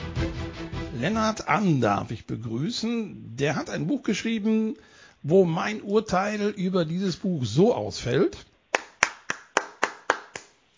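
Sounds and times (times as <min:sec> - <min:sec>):
speech: 0:01.0 - 0:08.5
crisp hand claps from one pair of hands: 0:08.7 - 0:10.6.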